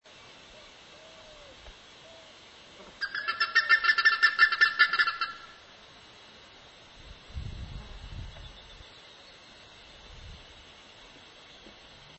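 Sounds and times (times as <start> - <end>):
plumbeous ibis calling with harsh nasal notes: 3.0 - 5.7.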